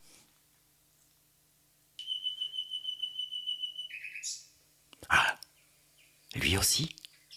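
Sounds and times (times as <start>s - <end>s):
nightingale singing: 2.0s - 4.5s
speech: 6.7s - 7.0s.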